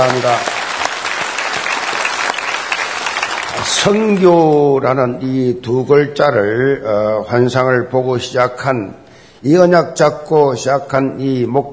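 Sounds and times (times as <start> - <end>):
speech: 0.0 - 0.6, 3.6 - 11.7
large audience applauding: 0.0 - 4.7.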